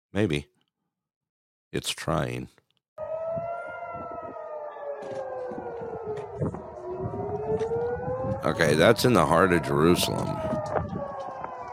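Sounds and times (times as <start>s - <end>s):
speech: 0.1s - 0.5s, 1.7s - 2.6s, 8.4s - 10.8s
air raid sirens wailing in Jerusalem during rocket attack: 3.0s - 11.7s
rumbling outdoor background: 3.0s - 11.7s.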